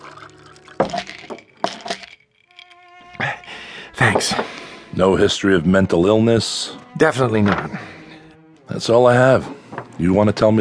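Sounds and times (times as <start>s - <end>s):
water poured into a glass: 0.0s - 3.1s
speech: 4.0s - 7.9s, 8.7s - 10.5s.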